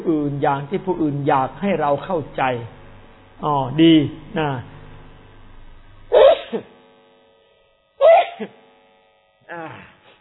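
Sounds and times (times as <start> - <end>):
speech: 0.1 - 2.8, 3.4 - 4.7, 9.5 - 9.9
person sneezing: 6.1 - 6.7, 8.0 - 8.5.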